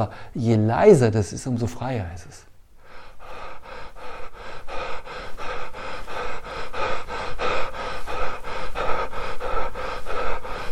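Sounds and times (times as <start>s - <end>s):
deep quiet breathing: 0.0s - 0.5s, 2.7s - 10.7s
speech: 0.0s - 2.5s.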